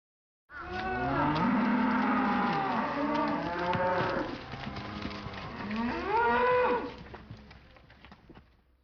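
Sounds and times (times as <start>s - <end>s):
cow mooing: 0.5s - 7.0s.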